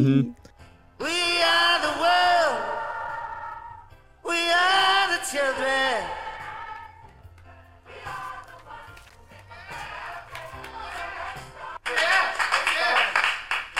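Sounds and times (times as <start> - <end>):
speech: 0.0 - 1.2
voices singing in a studio: 1.0 - 13.0
loud applause of many hands clapping in a recording studio: 9.7 - 13.7.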